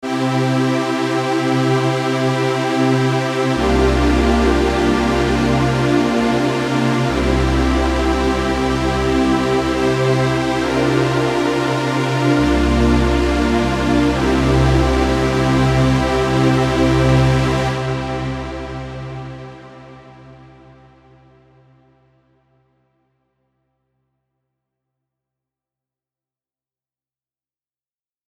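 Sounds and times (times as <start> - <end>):
long mono trance saw synth pad: 0.2 - 20.5.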